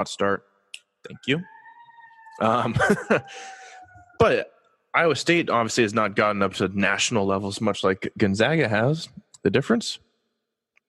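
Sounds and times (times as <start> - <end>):
speech: 0.0 - 1.5, 2.4 - 10.1
faint siren with a steady high tone: 1.2 - 4.5
person laughing: 2.4 - 3.8.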